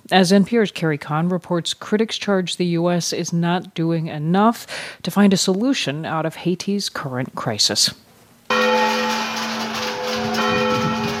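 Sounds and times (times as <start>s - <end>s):
speech: 0.1s - 8.1s
church bells ringing: 8.5s - 11.1s.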